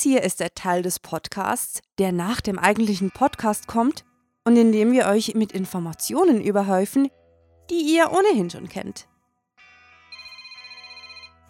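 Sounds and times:
speech: 0.0 - 9.1
telephone ringing with a bright electronic tone: 10.1 - 11.4.

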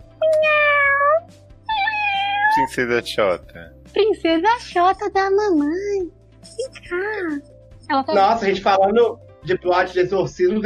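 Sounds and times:
cat meowing: 0.2 - 2.8
speech: 2.7 - 10.6.

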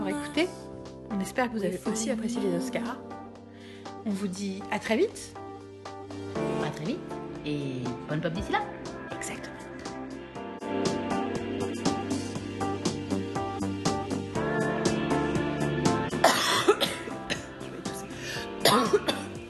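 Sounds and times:
melodic music with a regular beat: 0.0 - 19.4
speech: 0.4 - 0.6, 1.2 - 3.2, 4.0 - 5.4, 6.8 - 8.8
person coughing: 16.2 - 17.6, 18.6 - 19.4.

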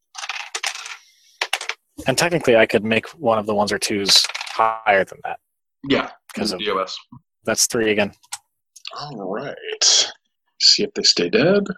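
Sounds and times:
dice tumbling and bouncing across a hard tabletop: 0.2 - 1.8
speech: 2.0 - 8.3, 8.9 - 10.0, 10.6 - 11.7.

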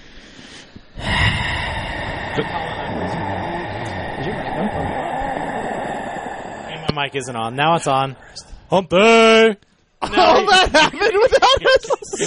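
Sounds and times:
steady rush of noisy background: 1.0 - 8.7
sudden dramatic gasp: 1.0 - 8.7
speech: 2.4 - 2.6, 7.0 - 12.2
laughter: 10.0 - 12.2.

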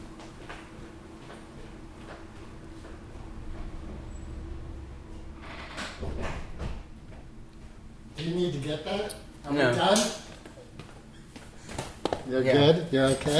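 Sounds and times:
steady low hum in a quiet room: 1.6 - 9.5
speech: 8.5 - 10.2, 12.3 - 13.3.

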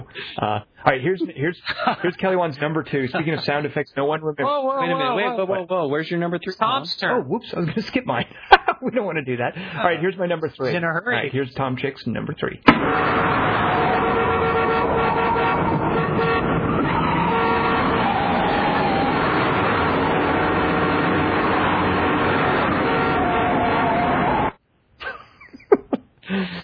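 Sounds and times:
speech: 0.1 - 14.0
laughter: 1.1 - 3.8, 7.6 - 9.0, 25.0 - 26.0
car horn honking in a car chase scene: 12.7 - 24.5
continuous traffic din: 12.7 - 24.6.

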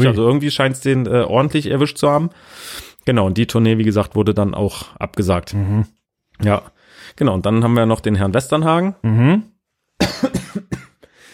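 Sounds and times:
speech: 0.0 - 9.5
harsh coughs: 10.0 - 11.0.

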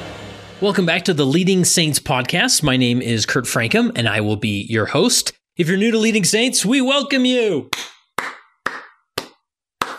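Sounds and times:
speech: 0.6 - 8.3
single person clapping hands: 7.7 - 9.9.

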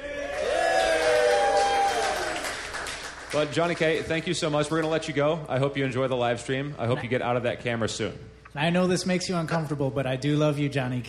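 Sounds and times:
audience cheering and whooping: 0.0 - 2.8
speech: 3.3 - 11.0.

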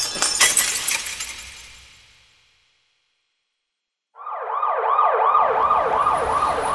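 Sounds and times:
stone smashing a shop window glass: 0.0 - 2.4
glass shards scattering: 0.0 - 2.6
wailing siren: 4.2 - 6.7.

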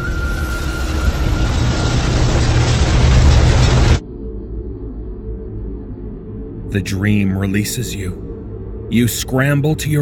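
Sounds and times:
suspension bridge groaning and tearing apart: 0.2 - 4.0
speech: 6.7 - 8.3, 8.9 - 9.9.

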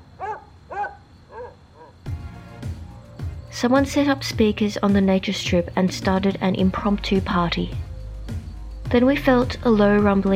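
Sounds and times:
dogs barking excitedly with high-pitched yelping barks: 0.2 - 2.0
speech: 3.6 - 7.8, 8.9 - 10.3.

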